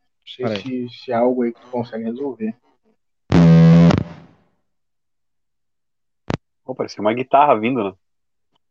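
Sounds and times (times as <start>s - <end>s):
speech: 0.4s - 2.7s, 6.7s - 8.0s
distorted buzzing feedback: 3.3s - 4.3s.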